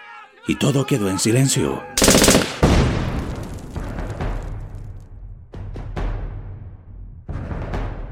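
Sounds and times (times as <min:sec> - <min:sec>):
speech: 0:00.4 - 0:02.6
machine gun burst: 0:02.0 - 0:03.0
sharp cracks: 0:02.0 - 0:04.1
heavy explosion: 0:02.5 - 0:04.7.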